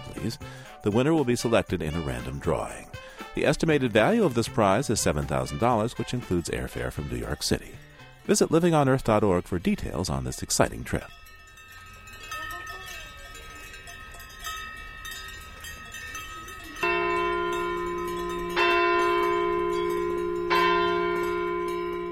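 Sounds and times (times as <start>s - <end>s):
cowbells on a herd of cows in a Swiss alpine village: 0.0s - 22.1s
speech: 0.2s - 11.2s
big church bells striking for the Angelus: 10.2s - 22.1s.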